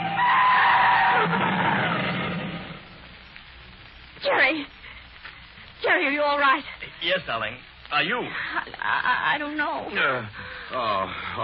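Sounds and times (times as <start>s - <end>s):
car tires screeching as the car brakes hard: 0.0s - 2.8s
speech: 6.3s - 11.4s.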